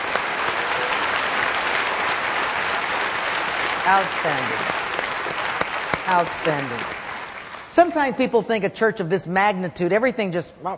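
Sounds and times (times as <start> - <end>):
large audience applauding: 0.0 - 7.7
speech: 3.9 - 4.8, 6.1 - 7.0, 7.7 - 10.7.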